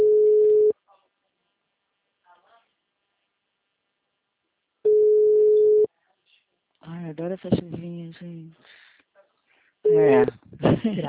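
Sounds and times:
telephone busy signal tone: 0:00.0 - 0:00.7, 0:04.9 - 0:05.9, 0:09.9 - 0:10.2
speech: 0:07.2 - 0:08.8, 0:09.9 - 0:11.0.

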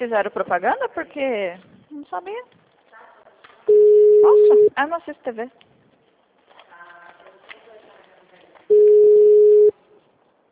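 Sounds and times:
speech: 0:00.0 - 0:02.6, 0:03.7 - 0:05.6
faint noise: 0:00.0 - 0:10.5
telephone ringing in a home: 0:03.7 - 0:04.7, 0:08.7 - 0:09.7.

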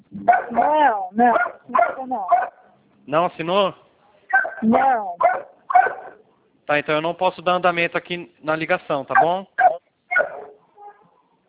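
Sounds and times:
speech: 0:00.2 - 0:02.5, 0:03.1 - 0:03.8, 0:04.6 - 0:05.8, 0:06.7 - 0:09.5
dog barking during a phone call: 0:00.2 - 0:02.7, 0:04.3 - 0:04.6, 0:05.2 - 0:06.2, 0:09.1 - 0:11.2.

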